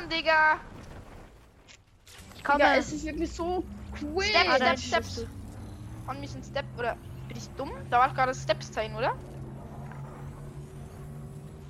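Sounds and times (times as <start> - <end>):
speech: 0.1 - 0.7, 2.4 - 5.4, 6.1 - 9.3
car engine humming while driving in a video game: 2.8 - 11.6.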